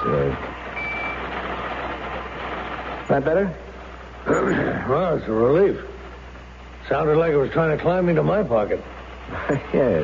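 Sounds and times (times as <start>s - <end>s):
steady hum: 0.0s - 10.0s
small alarm watch beeping: 0.8s - 1.2s
speech: 3.1s - 3.6s, 4.2s - 5.9s, 6.9s - 10.0s.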